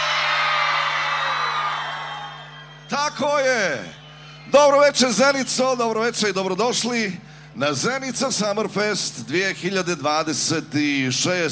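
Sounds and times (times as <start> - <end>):
festival crowd screaming and cheering at an evening summer music festival: 0.0 - 5.5
speech: 2.9 - 11.5.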